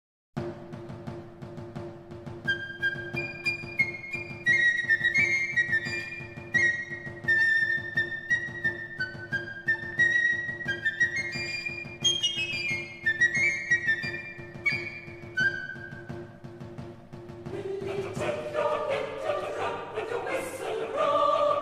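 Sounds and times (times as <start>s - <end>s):
flute in a classical piece: 2.4s - 16.8s, 17.5s - 21.6s
choir singing a classical piece: 17.5s - 21.6s.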